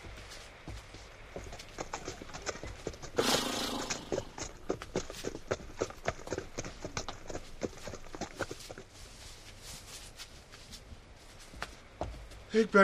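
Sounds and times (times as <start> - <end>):
horses' hooves clip-clopping: 0.0 - 12.8
rustling burst: 3.2 - 4.4
speech: 12.6 - 12.8.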